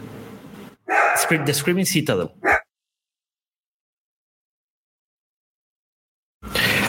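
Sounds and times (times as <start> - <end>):
dogs barking: 0.9 - 1.7, 2.4 - 2.7
speech: 1.2 - 2.5.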